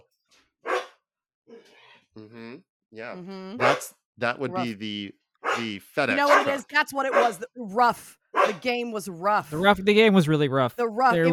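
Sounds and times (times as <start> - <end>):
dog barking: 0.7 - 0.9, 3.6 - 3.9, 5.4 - 7.4, 8.4 - 8.6
speech: 2.2 - 11.3.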